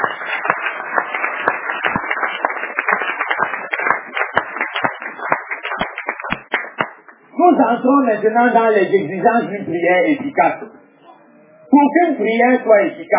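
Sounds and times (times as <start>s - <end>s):
audience applause at a church sermon: 0.0s - 7.2s
speech: 7.5s - 10.8s, 11.8s - 13.1s.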